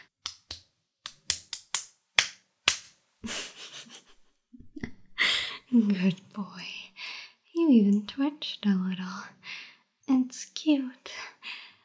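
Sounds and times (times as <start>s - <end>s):
slaps on skin: 0.2s - 3.0s
speech: 5.8s - 6.8s, 7.7s - 9.4s, 10.3s - 11.2s.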